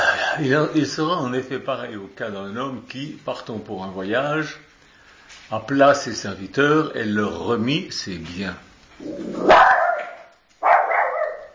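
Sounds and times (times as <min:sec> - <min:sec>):
speech: 0:00.4 - 0:04.7, 0:05.5 - 0:09.7
small dog barking: 0:09.4 - 0:11.5.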